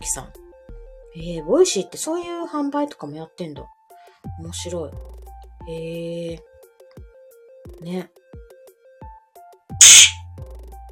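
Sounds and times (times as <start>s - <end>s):
speech: 0.0s - 0.4s, 1.2s - 6.5s, 7.7s - 8.2s
comedy retort smack sound effect over a low electronic tone: 9.8s - 10.2s.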